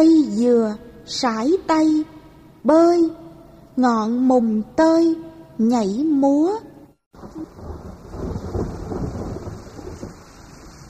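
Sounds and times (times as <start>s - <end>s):
speech: 0.0s - 3.2s, 3.8s - 6.7s
deep rolling thunder rumbles in a thunderstorm: 7.2s - 10.8s
hiss of falling rain in a thunderstorm: 7.2s - 10.8s.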